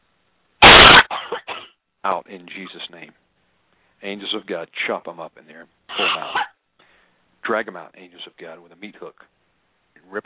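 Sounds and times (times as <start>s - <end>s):
person coughing during a deliverance prayer session: 0.7s - 1.7s, 5.9s - 6.6s
speech: 2.0s - 3.2s, 4.0s - 6.5s, 7.5s - 9.4s, 10.1s - 10.2s.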